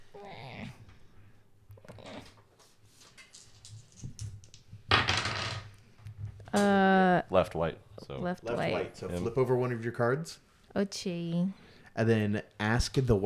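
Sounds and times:
dice clattering and rattling across a tabletop: 0:03.2 - 0:05.8
speech: 0:06.6 - 0:13.2.

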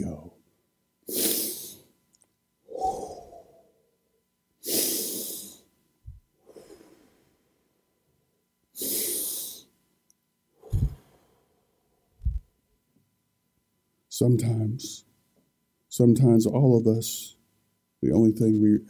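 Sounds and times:
slow deep breathing: 0:02.7 - 0:03.8, 0:04.6 - 0:07.8, 0:10.6 - 0:12.0
speech: 0:14.2 - 0:15.1, 0:16.0 - 0:17.4, 0:18.0 - 0:18.8.

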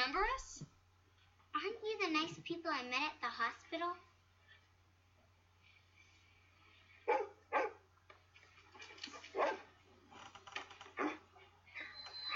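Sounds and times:
speech: 0:00.1 - 0:00.7, 0:01.6 - 0:04.1
dog barking in greeting at a family home: 0:07.1 - 0:07.8, 0:09.4 - 0:09.7.

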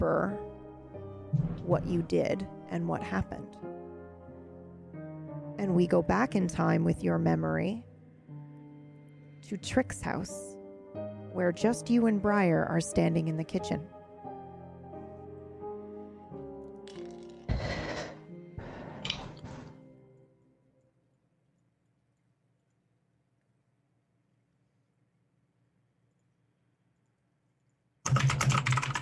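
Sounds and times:
speech: 0:00.0 - 0:03.7, 0:05.6 - 0:07.9, 0:09.4 - 0:10.5, 0:11.4 - 0:13.9
sustained soft musical tone: 0:00.0 - 0:20.9
computer keyboard typing: 0:28.1 - 0:29.0.

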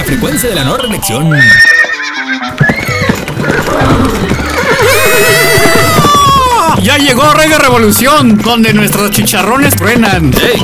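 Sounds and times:
horse hooves clip-clopping: 0:00.0 - 0:10.6
speech: 0:00.1 - 0:01.8, 0:06.9 - 0:10.6
horse whinnying: 0:01.3 - 0:06.8.

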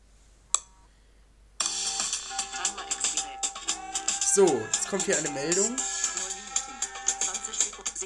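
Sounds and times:
smartphone timer alarm electronic melody: 0:01.6 - 0:07.4
speech: 0:04.4 - 0:06.0.

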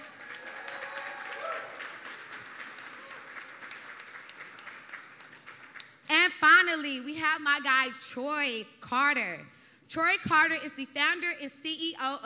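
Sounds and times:
crowd applauding: 0:00.0 - 0:06.0
whoops and cheers: 0:00.1 - 0:02.0, 0:02.9 - 0:03.4
speech: 0:07.1 - 0:12.2.

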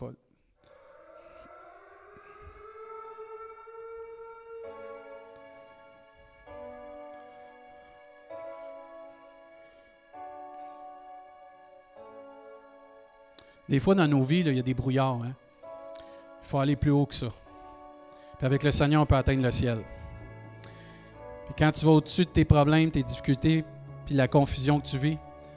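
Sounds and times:
speech: 0:00.0 - 0:00.2, 0:13.7 - 0:15.4, 0:16.5 - 0:17.4, 0:18.4 - 0:20.0, 0:21.6 - 0:25.2
loud harsh alarm tone: 0:00.7 - 0:06.9.

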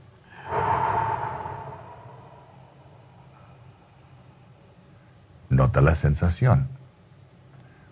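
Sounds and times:
soft airy breath during a guided breathing exercise: 0:00.2 - 0:05.2
speech: 0:05.6 - 0:06.8.

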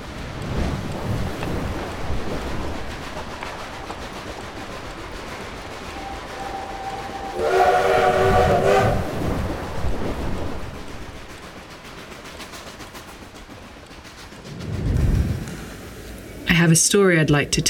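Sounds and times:
moving train rumbling with a low noisy roar: 0:00.0 - 0:17.6
brief tonal blast like a train horn or whistle: 0:06.0 - 0:09.1
speech: 0:16.6 - 0:17.6.

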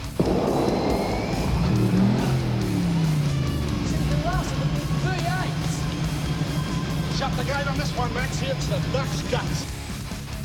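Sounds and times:
race car engine roaring and revving: 0:00.0 - 0:09.9.

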